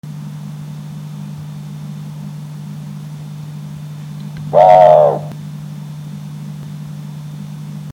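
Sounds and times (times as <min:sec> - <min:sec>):
Strix hylophila calling: 0:04.4 - 0:05.4.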